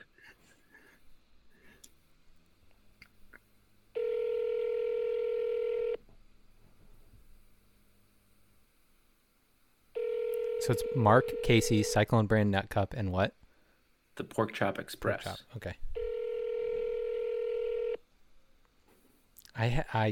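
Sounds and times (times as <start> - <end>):
faint hum: 0.0 - 20.0
electronic telephone ringback tone: 4.0 - 6.0, 10.0 - 11.9, 16.0 - 18.0
speech: 10.7 - 13.4, 14.2 - 15.9, 19.6 - 20.0.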